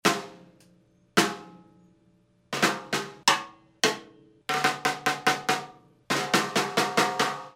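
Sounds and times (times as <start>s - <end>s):
14x5 steel snare drum: 0.0s - 0.5s, 1.2s - 1.6s, 2.6s - 7.5s.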